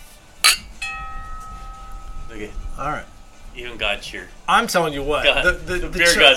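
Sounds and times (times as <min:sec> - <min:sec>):
sharp metallic clink: 0:00.4 - 0:03.6
clear sustained chime tone: 0:00.5 - 0:04.4
speech: 0:02.4 - 0:06.3.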